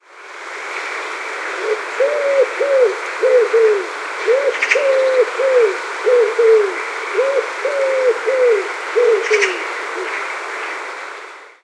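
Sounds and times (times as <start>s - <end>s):
Columba palumbus birdsong: 1.6s - 10.2s.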